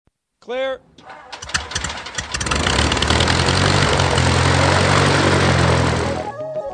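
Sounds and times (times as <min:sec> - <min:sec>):
speech: 0:00.4 - 0:01.4
propeller aircraft engine roar: 0:01.3 - 0:06.3.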